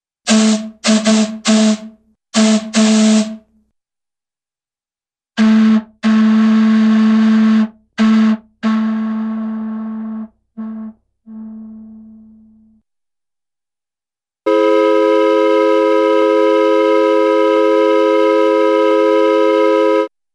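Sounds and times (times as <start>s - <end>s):
cartoon factory steam whistle: 0.3s - 3.5s, 5.4s - 12.8s, 14.5s - 20.1s.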